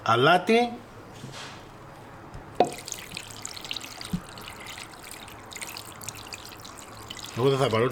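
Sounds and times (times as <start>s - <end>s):
speech: 0.1s - 1.5s, 7.4s - 7.9s
water poured over chicken in a pot: 2.6s - 7.9s.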